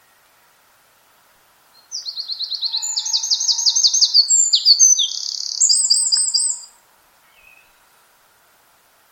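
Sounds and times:
bird chirps and buzzy trills: 1.8s - 6.7s.

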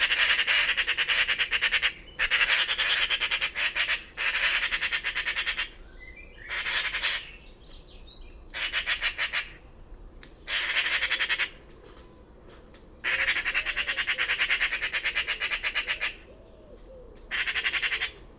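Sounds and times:
bird giving harsh buzzy squawks: 0.0s - 5.8s, 6.5s - 7.3s, 8.6s - 9.6s, 10.5s - 11.6s, 13.0s - 16.2s, 17.3s - 18.2s.

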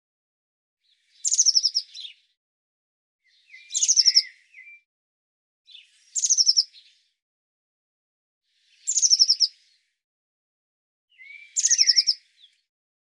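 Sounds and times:
Eurasian blue tit calls: 1.2s - 2.2s, 3.5s - 4.8s, 5.7s - 6.8s, 8.8s - 9.6s, 11.2s - 12.3s.

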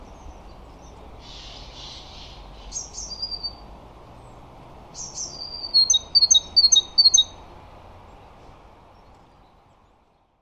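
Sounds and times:
great tit calls: 0.0s - 3.6s, 4.9s - 7.4s.

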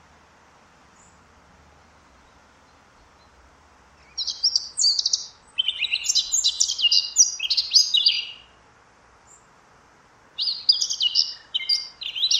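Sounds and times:
Eurasian blackcap warbling song: 4.0s - 8.4s, 10.4s - 12.3s.

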